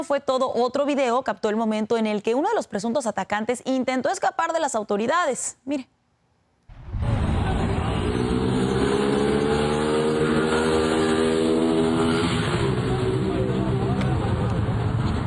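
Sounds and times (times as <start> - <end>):
speech: 0.0 - 6.0
motorcycle engine revving and accelerating: 6.9 - 15.1.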